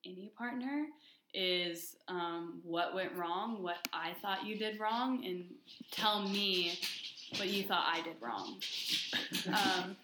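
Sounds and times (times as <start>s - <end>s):
speech: 0.0s - 10.0s
dog scrabbling and shuffling while struggling to get up: 5.6s - 10.0s.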